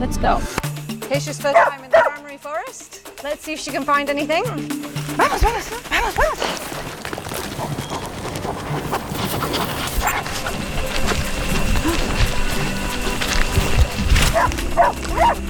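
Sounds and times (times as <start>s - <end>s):
speech: 0.0s - 1.8s, 2.4s - 6.9s
dog giving short sharp barks: 1.5s - 2.2s, 6.1s - 6.6s, 8.7s - 13.0s, 13.6s - 15.4s
footsteps: 4.9s - 15.4s
rustling outdoor ambience: 4.9s - 15.4s.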